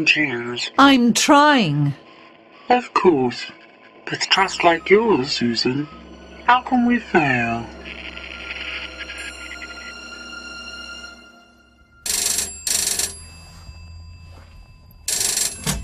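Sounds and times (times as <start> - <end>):
speech: 0.0 - 2.0, 2.7 - 8.0
office telephone bell ringing: 12.0 - 15.8.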